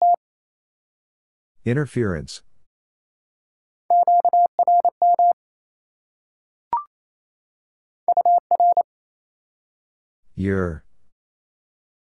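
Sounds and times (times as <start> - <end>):
speech: 1.6 - 2.5, 10.4 - 10.8
Morse code tones at 28 words per minute: 3.9 - 5.4, 8.1 - 8.8.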